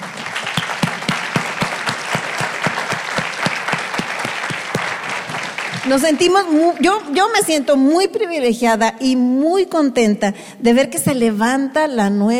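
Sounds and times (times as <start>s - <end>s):
sharper individual claps: 0.0s - 7.5s
room full of people applauding two young speakers: 0.0s - 7.6s
speech: 5.9s - 12.3s.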